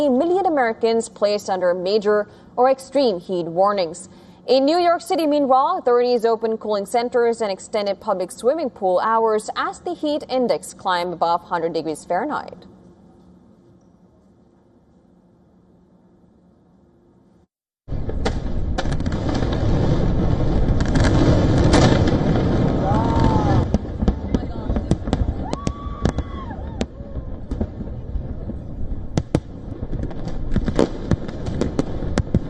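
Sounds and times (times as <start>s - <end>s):
speech: 0.0s - 12.7s
fireworks exploding in the night sky during Independence Day celebrations in the United States: 17.9s - 32.4s.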